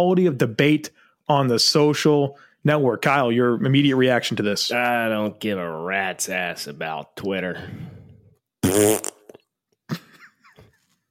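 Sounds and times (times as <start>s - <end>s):
speech: 0.0s - 8.0s, 8.7s - 9.1s
buzzy fart noise likely made with the mouth: 8.6s - 9.4s.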